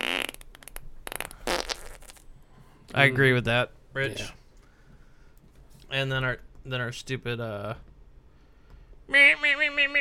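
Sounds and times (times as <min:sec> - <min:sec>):
cartoonish fart sound effect from a soundboard button: 0:00.0 - 0:02.2
speech: 0:02.9 - 0:04.4, 0:05.9 - 0:07.9, 0:09.1 - 0:09.9.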